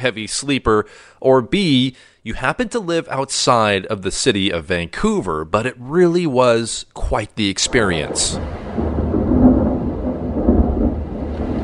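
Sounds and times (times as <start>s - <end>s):
speech: 0.0s - 8.8s
deep continuous thunder rumbling following forked lightning in Vancouver: 7.6s - 11.6s
hiss of falling rain in a steady rainstorm in Vancouver: 7.6s - 11.6s.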